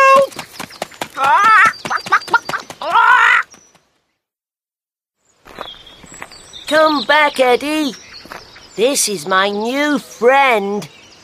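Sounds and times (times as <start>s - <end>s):
big chicken squawking: 1.2s - 3.5s
speech: 6.7s - 8.0s, 8.8s - 11.0s.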